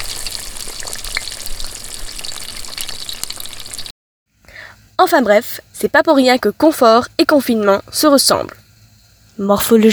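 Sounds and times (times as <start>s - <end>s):
chicken simmering and sizzling in a saucepan: 0.0s - 3.9s
speech: 5.0s - 8.6s, 9.4s - 9.9s.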